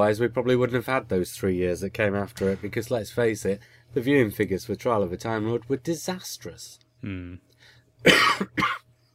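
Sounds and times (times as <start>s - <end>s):
speech: 0.0s - 8.8s
person coughing harshly: 8.0s - 8.9s.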